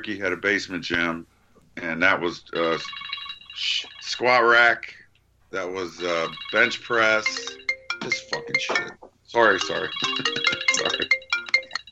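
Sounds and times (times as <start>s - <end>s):
speech: 0.0s - 11.2s
phone ringtone of bright electronic tones: 2.6s - 4.3s, 6.0s - 11.8s.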